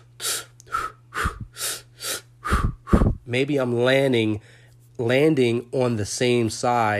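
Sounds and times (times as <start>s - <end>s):
rhythmic breathing in for two, out for two: 0.0s - 3.3s
speech: 3.3s - 6.9s.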